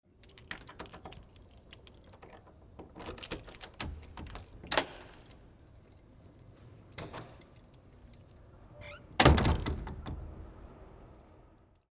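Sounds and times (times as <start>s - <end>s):
lock being opened: 0.2s - 10.2s.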